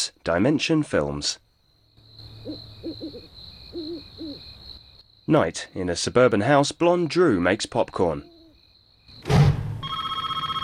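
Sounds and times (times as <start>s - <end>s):
speech: 0.2s - 1.4s, 5.3s - 8.3s
brief thunk: 9.2s - 9.8s
cordless telephone ringing in a suburban house at night: 9.8s - 10.6s.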